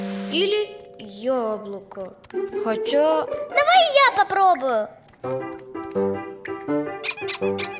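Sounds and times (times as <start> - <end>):
speech: 0.3 - 6.1, 7.4 - 7.7
rubber duck squeaking: 7.0 - 7.7.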